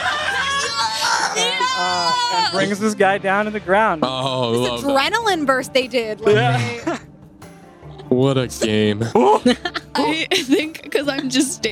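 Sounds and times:
laughter: 0:00.0 - 0:02.5, 0:06.2 - 0:07.1, 0:08.6 - 0:11.7
person screaming while jumping onto a man's back: 0:00.0 - 0:02.7
speech: 0:01.8 - 0:07.0, 0:08.2 - 0:11.7.

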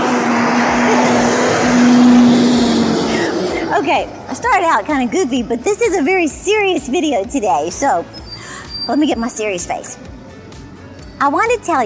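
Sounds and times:
large bus driving past with engine hum: 0:00.0 - 0:09.4
speech: 0:03.8 - 0:08.2, 0:08.8 - 0:10.1, 0:11.2 - 0:11.8.

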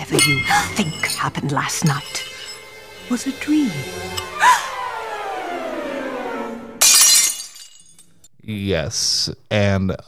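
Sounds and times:
glass slipper shattering: 0:00.0 - 0:02.8, 0:06.8 - 0:08.2
speech: 0:00.2 - 0:02.3, 0:03.1 - 0:04.3, 0:08.5 - 0:10.0
gliding tone sliding downward: 0:01.8 - 0:06.8.

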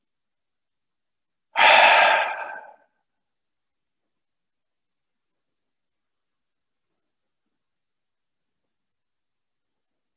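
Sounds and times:
long breathy exhale through the mouth: 0:01.6 - 0:02.8.

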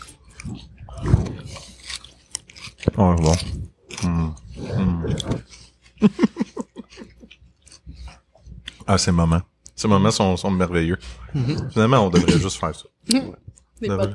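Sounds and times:
crunching and chewing raw vegetables into the microphone: 0:00.0 - 0:09.8
speech: 0:03.0 - 0:04.2, 0:06.0 - 0:06.4, 0:08.9 - 0:14.1
laughter: 0:06.0 - 0:07.3, 0:11.4 - 0:12.7.

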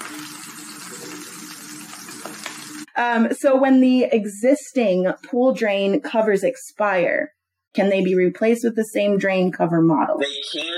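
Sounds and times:
bacon sizzling in a pan: 0:00.0 - 0:02.9
speech: 0:03.0 - 0:10.7.

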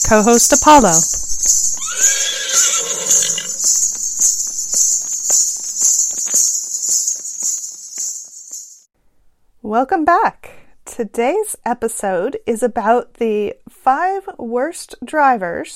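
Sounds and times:
horse hoof clops: 0:00.0 - 0:08.8
crickets chirping: 0:00.0 - 0:08.9
speech: 0:00.1 - 0:01.2, 0:09.7 - 0:10.4, 0:11.0 - 0:15.7
horse whinnying: 0:01.8 - 0:03.8.

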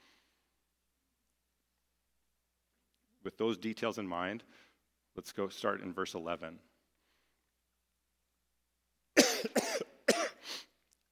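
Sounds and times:
speech: 0:03.2 - 0:06.7
harsh wet coughs: 0:09.2 - 0:10.5.

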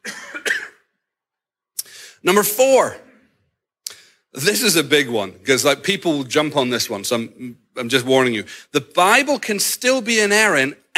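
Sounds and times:
person coughing: 0:00.0 - 0:00.9
speech: 0:02.2 - 0:03.1, 0:04.4 - 0:10.9.

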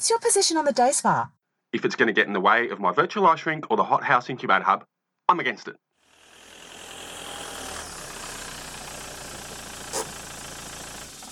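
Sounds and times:
speech: 0:00.0 - 0:05.9
car engine idling while parking: 0:06.4 - 0:11.3.

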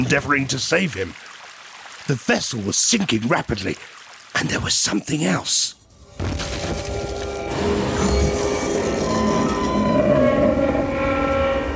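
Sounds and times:
speech: 0:00.0 - 0:01.4, 0:02.1 - 0:06.9
iceberg grinding against a ship's hull: 0:06.1 - 0:11.6.

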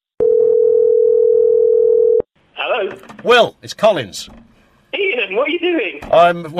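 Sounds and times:
telephone dial tone of an outgoing call: 0:00.2 - 0:02.2
speech: 0:03.2 - 0:04.6, 0:05.3 - 0:06.5.

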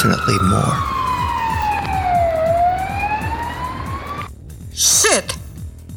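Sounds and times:
speech: 0:00.0 - 0:00.9, 0:04.8 - 0:05.4
sirens from more than one police car wailing: 0:00.0 - 0:04.3
low rumbling engine: 0:00.0 - 0:04.6
road noise: 0:00.0 - 0:05.0.

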